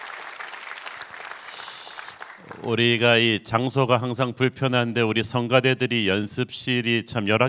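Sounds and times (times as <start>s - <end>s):
church audience applauding the choir after a hymn: 0.0s - 3.1s
speech: 2.6s - 7.4s.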